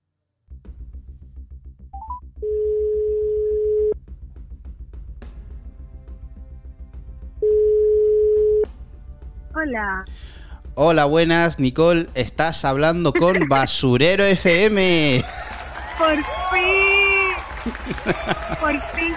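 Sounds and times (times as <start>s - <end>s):
phone ringback tone while placing a call: 2.0s - 4.0s, 7.4s - 8.7s
speech: 9.7s - 15.4s, 16.0s - 16.9s, 17.7s - 19.1s
laughter: 13.1s - 13.8s, 14.9s - 19.1s.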